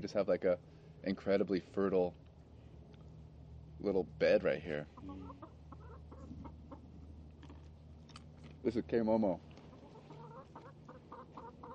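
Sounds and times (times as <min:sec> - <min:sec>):
speech: 0:00.0 - 0:02.2, 0:03.8 - 0:05.6, 0:08.6 - 0:09.5
low steady hum: 0:00.0 - 0:11.7
chicken clucking: 0:04.8 - 0:07.0, 0:09.6 - 0:11.7.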